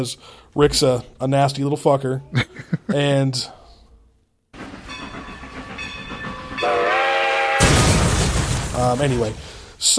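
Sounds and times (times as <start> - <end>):
speech: 0.0 - 3.6, 8.8 - 9.9
rumbling train: 4.6 - 8.3
train horn blaring: 6.5 - 7.7
train crash: 7.6 - 9.8.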